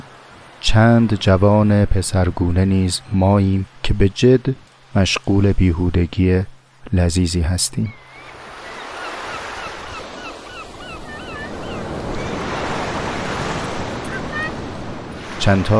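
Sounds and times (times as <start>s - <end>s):
sea waves washing onto a beach: 0.0s - 7.1s, 8.2s - 15.7s
speech: 0.6s - 8.0s, 15.4s - 15.7s
seagulls screeching over the surf: 7.9s - 14.6s.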